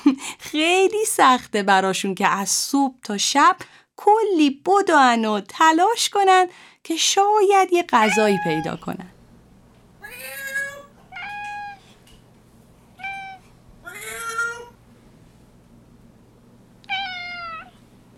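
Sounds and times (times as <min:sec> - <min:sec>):
speech: 0:00.0 - 0:09.2
faint steady hum: 0:00.0 - 0:18.1
domestic cat meowing: 0:08.0 - 0:08.8, 0:10.0 - 0:12.0, 0:13.0 - 0:14.8, 0:16.8 - 0:17.8.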